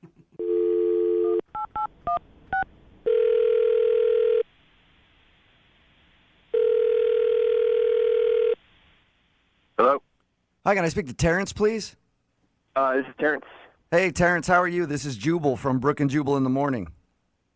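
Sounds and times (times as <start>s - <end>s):
telephone dial tone: 0.4s - 1.9s, 3.1s - 4.5s, 6.5s - 8.6s
speech: 10.7s - 12.0s, 12.8s - 17.0s.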